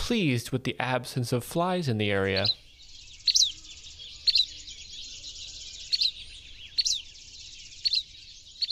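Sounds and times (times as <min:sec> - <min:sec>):
speech: 0:00.1 - 0:02.6
buff-breasted flycatcher chip calls: 0:01.9 - 0:08.7.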